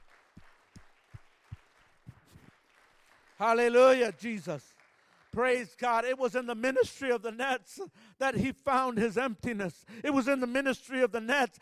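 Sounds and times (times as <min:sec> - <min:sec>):
audience clapping in a steady rhythmic beat during a sermon: 0:00.0 - 0:07.1
speech: 0:03.4 - 0:04.7, 0:05.4 - 0:11.6.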